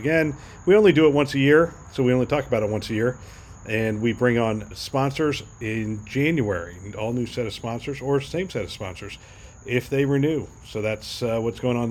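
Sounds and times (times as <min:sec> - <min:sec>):
crickets trilling: 0:00.0 - 0:11.8
speech: 0:00.0 - 0:11.8.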